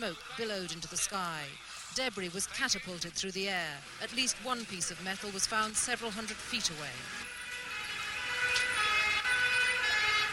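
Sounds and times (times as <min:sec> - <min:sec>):
speech: 0:00.0 - 0:07.4
low rumble of road traffic: 0:00.0 - 0:10.3
ambulance and police car sirens wailing after a mortar attack on Whitehall: 0:07.0 - 0:10.3.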